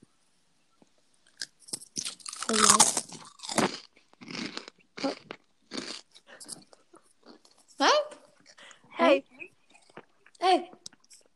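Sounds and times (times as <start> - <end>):
veggie straws being bitten and chewed: 1.2 - 7.6.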